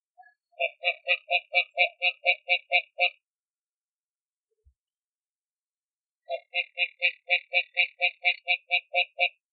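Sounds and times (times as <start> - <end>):
Rana arboricola mexicana calling: 0.2 - 3.2, 6.3 - 9.4.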